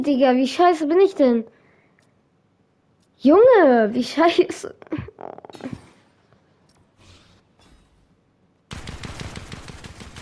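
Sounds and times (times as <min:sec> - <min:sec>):
speech: 0:00.0 - 0:01.6, 0:03.2 - 0:05.8
scattered quieter video game sounds: 0:00.0 - 0:10.2
gunfire from a new weapon in a video game: 0:08.7 - 0:10.2.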